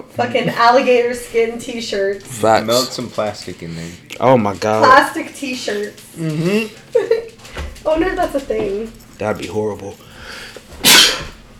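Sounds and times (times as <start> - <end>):
speech: 0.2 - 7.2, 7.9 - 11.1
single sharp sneeze: 10.8 - 11.4.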